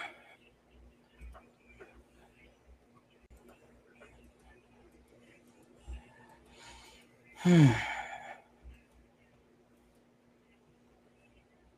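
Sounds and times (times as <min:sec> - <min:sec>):
soft breathing: 0:05.8 - 0:08.8
person yawning: 0:07.4 - 0:08.3.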